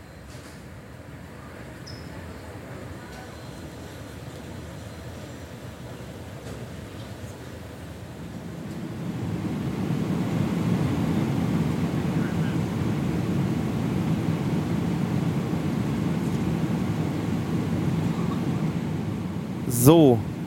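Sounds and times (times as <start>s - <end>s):
airplane cabin noise with deep engine rumble and airy hiss: 7.7s - 20.4s
speech: 19.8s - 20.3s.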